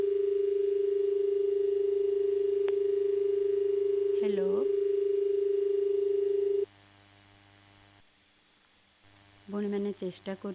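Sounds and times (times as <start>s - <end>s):
steady single-pitched telephone tone from a call not connecting: 0.0s - 6.7s
faint low hum: 0.0s - 10.5s
speech: 9.7s - 10.5s.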